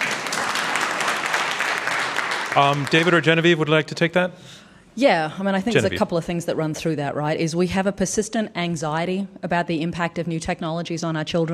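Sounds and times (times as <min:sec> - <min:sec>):
audience applause during a panel discussion: 0:00.0 - 0:03.8
speech: 0:02.6 - 0:11.5.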